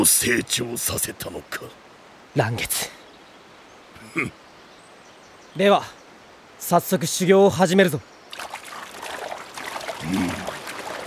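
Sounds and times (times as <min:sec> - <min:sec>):
speech: 0:00.0 - 0:03.0, 0:04.1 - 0:04.4, 0:05.6 - 0:06.0, 0:06.6 - 0:08.1, 0:10.0 - 0:10.5
heavy water pouring down a waterfall: 0:08.6 - 0:11.0.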